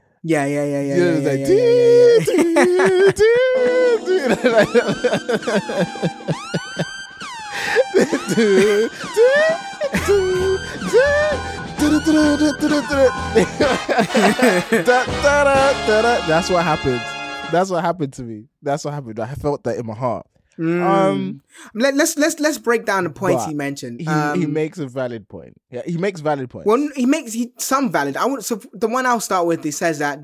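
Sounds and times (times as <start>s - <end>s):
speech: 0.2s - 6.9s, 8.3s - 30.2s
voice-like humming: 0.4s - 6.1s, 7.7s - 11.4s, 20.6s - 21.4s
laughter: 1.0s - 15.7s, 20.9s - 21.2s, 23.3s - 23.5s
film siren sound effect with swooping wailing tones: 4.0s - 11.5s.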